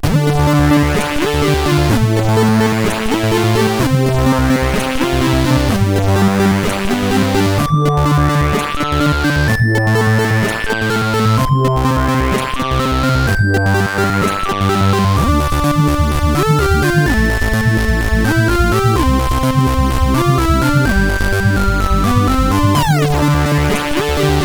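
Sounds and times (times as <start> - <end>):
CSG8580R5 SID chip sound: 0.0 - 24.4.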